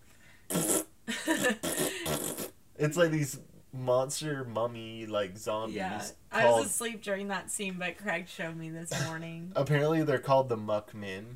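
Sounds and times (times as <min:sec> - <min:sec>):
dubbed fart sound effect: 0:00.5 - 0:02.6
speech: 0:01.3 - 0:01.7, 0:02.8 - 0:11.3.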